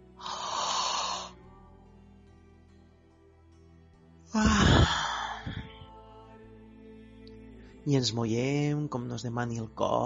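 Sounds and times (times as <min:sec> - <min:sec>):
long breathy yawn with a sigh while stretching: 0:00.2 - 0:01.4, 0:04.3 - 0:05.9
speech: 0:04.4 - 0:04.6, 0:07.9 - 0:10.0.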